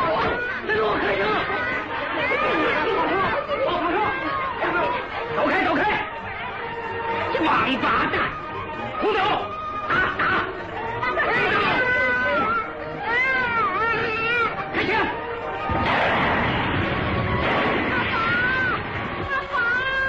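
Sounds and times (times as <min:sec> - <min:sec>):
panicked crowd shouting and screaming: 0:00.0 - 0:20.0
sharp gunshot-like bangs: 0:15.7 - 0:18.3.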